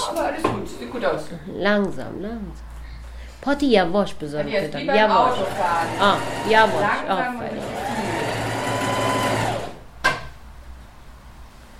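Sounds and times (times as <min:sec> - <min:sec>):
speech: 0:00.2 - 0:02.7, 0:03.4 - 0:08.0
sewing machine run by a foot pedal whirring: 0:05.1 - 0:09.9.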